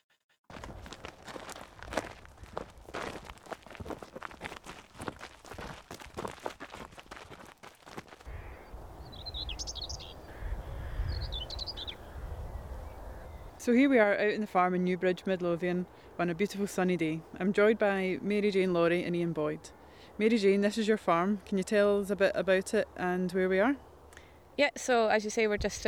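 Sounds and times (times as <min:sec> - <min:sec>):
footsteps crunching outdoors on a farm in Midlothian on a sunny day: 0:00.5 - 0:08.6
birds chirping and calling on a farm in Midlothian: 0:08.3 - 0:13.6
speech: 0:13.6 - 0:23.9, 0:24.6 - 0:25.8.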